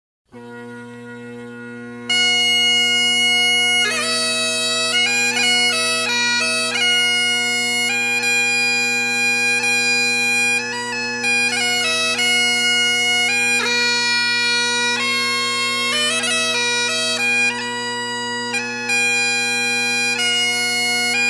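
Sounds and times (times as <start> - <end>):
bagpipes playing: 0.3 - 21.2.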